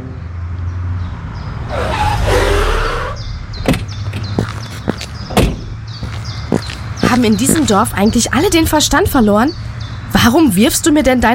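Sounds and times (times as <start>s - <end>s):
car pulling away in a village: 0.7s - 7.8s
speech: 7.2s - 11.3s.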